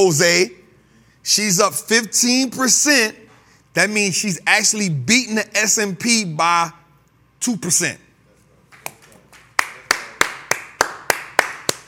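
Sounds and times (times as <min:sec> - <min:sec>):
speech: 0:00.0 - 0:00.6, 0:01.2 - 0:06.8, 0:07.4 - 0:08.0
hand clapping: 0:08.7 - 0:11.8.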